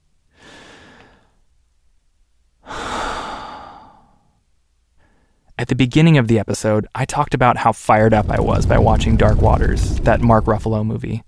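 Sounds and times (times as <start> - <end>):
person taking a deep breath: 0.3 - 1.4, 2.6 - 4.4
speech: 5.6 - 11.2.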